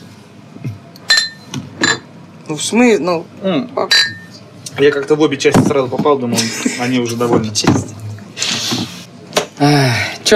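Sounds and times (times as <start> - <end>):
glass clinking as it is moved: 1.0 - 2.1, 3.9 - 5.0
speech: 2.5 - 4.2, 4.8 - 8.1, 9.6 - 10.3.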